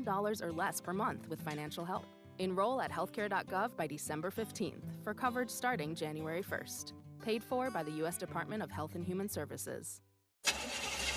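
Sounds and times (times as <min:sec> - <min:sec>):
speech: 0:00.0 - 0:10.6
car engine struggling to start: 0:10.4 - 0:11.1.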